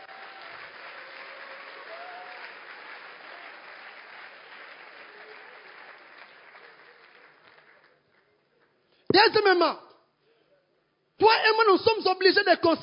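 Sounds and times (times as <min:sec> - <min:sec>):
church congregation applauding during a sermon: 0:00.0 - 0:08.8
speech: 0:09.2 - 0:09.8, 0:11.2 - 0:12.8.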